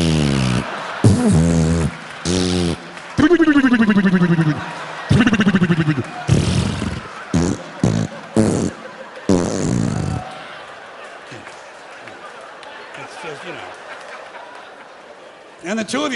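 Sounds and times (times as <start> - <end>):
man's voice imitating a queef: 0.0 - 10.2
audience laughing and murmuring: 0.0 - 15.6.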